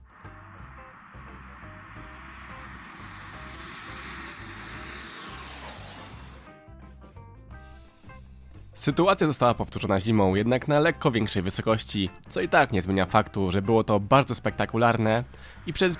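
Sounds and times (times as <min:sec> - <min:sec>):
Cessna 525 business jet roar during a low pass: 0:00.0 - 0:06.5
speech: 0:08.8 - 0:15.9.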